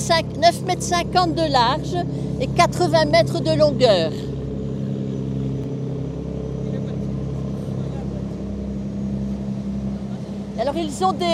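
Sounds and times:
speech: 0:00.0 - 0:04.3, 0:10.6 - 0:11.3
80-metre cargo boat engine rumbling: 0:00.0 - 0:11.3.

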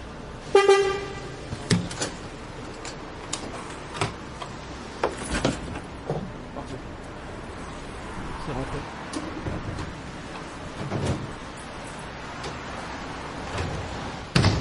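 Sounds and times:
low street hum: 0:00.0 - 0:14.5
bus horn toot: 0:00.5 - 0:01.4
metallic clunks, clicks and rattles of a bicycle being loaded onto a bus: 0:01.6 - 0:06.4, 0:09.1 - 0:11.4, 0:13.4 - 0:14.5.

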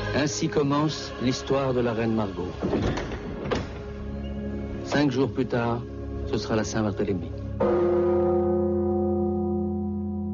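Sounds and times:
speech: 0:00.2 - 0:03.2, 0:04.9 - 0:08.7
large church bell tolling: 0:07.6 - 0:10.3.

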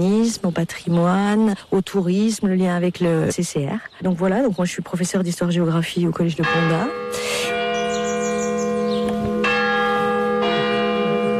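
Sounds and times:
speech: 0:00.0 - 0:07.6
village church bell chiming the quarter hour: 0:06.2 - 0:11.3.

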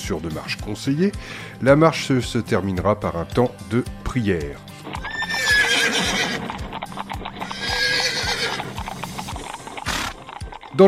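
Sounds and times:
speech: 0:00.1 - 0:04.7
heavy draft horse hooves clopping at a draft-horse farm in the Orne: 0:04.7 - 0:10.8.

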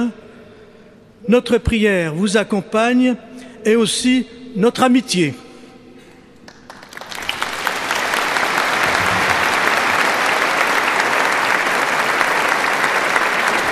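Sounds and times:
speech: 0:00.0 - 0:00.2, 0:01.3 - 0:05.4
congregation applauding at a prayer service: 0:06.5 - 0:13.7.

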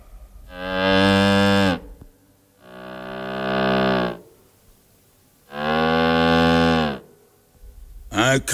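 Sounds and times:
instrument imitating a cow mooing: 0:00.5 - 0:02.0, 0:02.6 - 0:04.4, 0:05.5 - 0:07.1
speech: 0:08.3 - 0:08.5.

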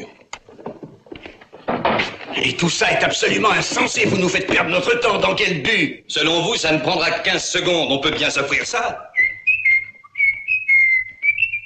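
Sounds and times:
speech: 0:02.4 - 0:09.1
person whistling: 0:09.1 - 0:11.6.

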